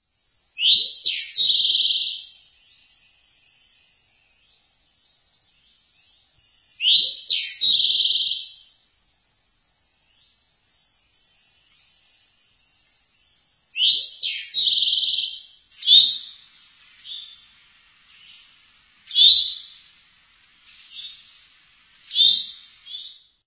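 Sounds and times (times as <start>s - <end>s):
Eastern Towhee calling: 0.6s - 2.3s, 6.8s - 8.6s, 13.8s - 20.0s, 20.6s - 23.3s.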